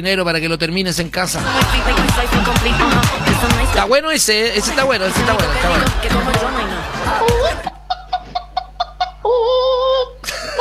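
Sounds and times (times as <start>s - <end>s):
speech: 0.0s - 7.7s
people laughing: 1.4s - 9.4s.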